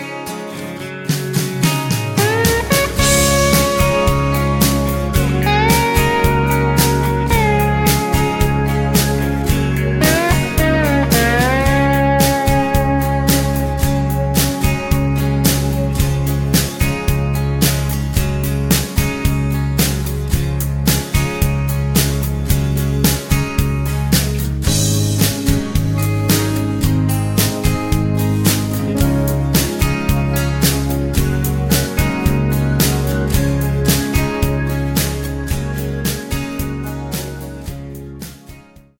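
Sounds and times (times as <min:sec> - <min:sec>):
backing track in D flat without backing vocals: 0:00.8 - 0:38.9.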